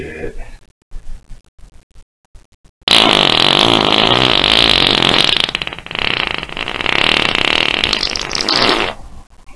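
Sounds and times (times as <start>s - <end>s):
fart on dog: 2.9s - 9.0s.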